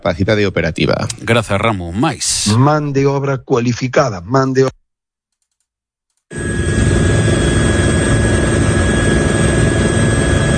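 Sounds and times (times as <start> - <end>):
speech: 0.0 - 4.8, 6.3 - 6.7
firefighting helicopter flying: 6.3 - 10.5.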